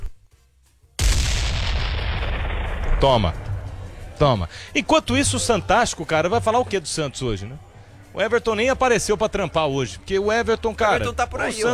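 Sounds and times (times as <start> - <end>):
bomb explosion sound effect: 1.0 - 4.7
speech: 3.0 - 3.5, 4.2 - 11.7.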